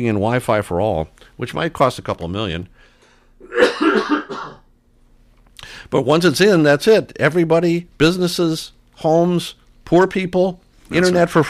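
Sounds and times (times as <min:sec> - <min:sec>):
speech: 0:00.0 - 0:04.2, 0:05.9 - 0:11.4
person coughing: 0:03.4 - 0:04.7.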